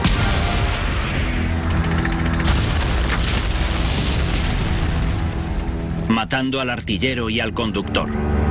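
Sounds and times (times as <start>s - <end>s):
explosion of a Sherman tank struck by a German Panzer at Arracourt: 0.0s - 5.8s
rumbling booms and crackle: 0.0s - 6.3s
speech: 6.2s - 8.4s.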